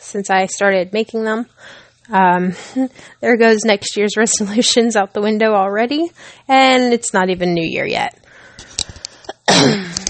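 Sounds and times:
speech: 0:00.1 - 0:08.2
faint breathy clicks: 0:08.4 - 0:10.0
single loud harsh cough: 0:09.4 - 0:10.0.

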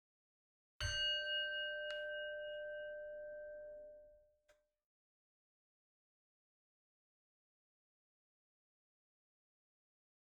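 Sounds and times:
bell rung to start meditation: 0:00.8 - 0:03.9.

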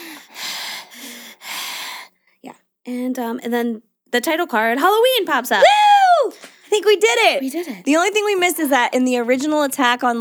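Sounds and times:
person imitating heavy menacing raspy breathing: 0:00.0 - 0:02.1
speech: 0:02.4 - 0:05.8, 0:06.7 - 0:10.1.

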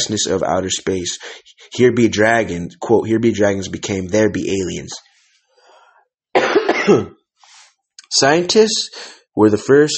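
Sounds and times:
speech: 0:00.0 - 0:05.1, 0:06.9 - 0:07.2, 0:08.1 - 0:09.9
faint breath: 0:05.1 - 0:06.1, 0:07.4 - 0:07.8, 0:08.9 - 0:09.3
harsh raspy cough: 0:06.4 - 0:07.2.

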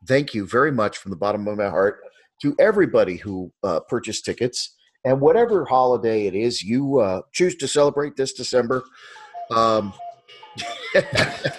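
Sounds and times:
speech: 0:00.1 - 0:10.0, 0:10.6 - 0:11.5
cuckoo clock chiming: 0:09.0 - 0:11.5
light laughter: 0:10.6 - 0:11.5.

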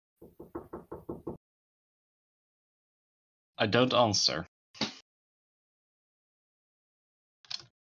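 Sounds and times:
speech: 0:00.2 - 0:00.8, 0:03.6 - 0:04.5
quick knocks on a wooden door: 0:00.2 - 0:01.4.

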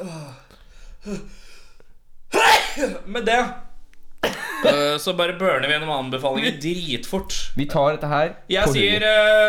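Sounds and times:
sharp wheezy inhalations: 0:00.0 - 0:03.0
speech: 0:01.0 - 0:01.5, 0:02.8 - 0:03.6, 0:04.6 - 0:09.4
person sneezing: 0:02.3 - 0:03.0.

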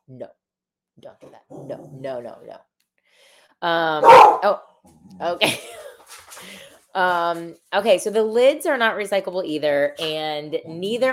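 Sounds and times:
speech: 0:00.1 - 0:00.4, 0:01.0 - 0:05.8, 0:06.4 - 0:11.1
dog giving loud drawn-out whiny barks: 0:04.0 - 0:04.5.

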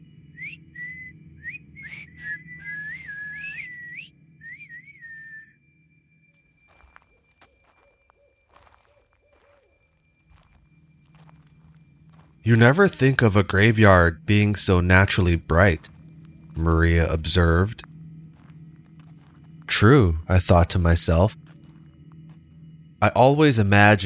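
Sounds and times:
two people whistling together: 0:00.3 - 0:05.6
faint footsteps: 0:06.4 - 0:14.0, 0:14.9 - 0:22.8
low outdoor rumble: 0:11.0 - 0:24.0
speech: 0:12.5 - 0:16.0, 0:16.6 - 0:17.7, 0:19.8 - 0:21.4, 0:23.0 - 0:24.0.

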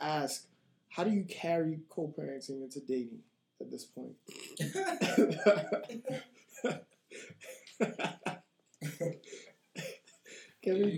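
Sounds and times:
speech: 0:00.2 - 0:08.4, 0:09.0 - 0:09.9, 0:10.6 - 0:10.9
throaty coughs with voiced bursts: 0:04.3 - 0:06.8, 0:08.8 - 0:10.0
laughter: 0:04.6 - 0:10.0.

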